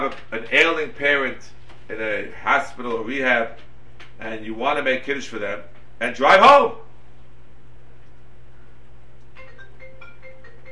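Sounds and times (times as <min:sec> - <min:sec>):
low hum: 0:00.0 - 0:10.7
speech: 0:00.1 - 0:06.8
phone ringing with an electronic ringtone of bright repeating beeps: 0:09.4 - 0:10.7.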